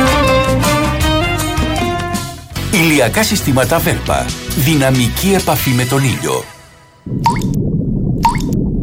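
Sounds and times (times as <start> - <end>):
steady low wet background: 0.1 - 8.8
speech: 3.0 - 7.6
water dripping from a sponge used to wash a car: 8.2 - 8.6.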